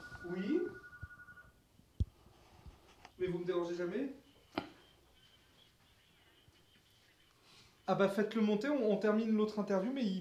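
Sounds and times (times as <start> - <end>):
telephone ringing: 0.0 - 1.6
speech: 0.2 - 0.8, 3.2 - 4.6, 7.9 - 10.1.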